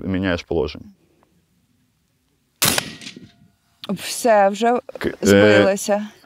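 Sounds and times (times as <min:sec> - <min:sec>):
speech: 0:00.0 - 0:01.0, 0:03.9 - 0:06.2
firearm gunshot at shooting practice: 0:02.6 - 0:03.4.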